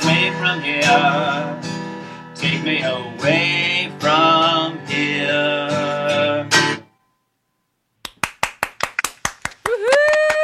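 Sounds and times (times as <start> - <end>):
person singing: 0.0 - 1.6, 2.4 - 6.6
speech: 0.4 - 1.7, 2.4 - 4.3
small group of listeners clapping over a video call: 8.0 - 10.4.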